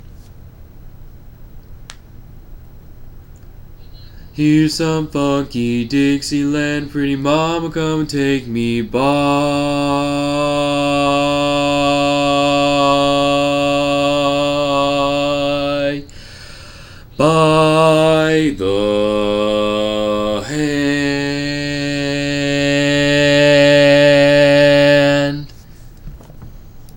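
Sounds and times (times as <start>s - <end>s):
bass voice singing barbershop: 4.4s - 16.0s, 17.2s - 25.5s.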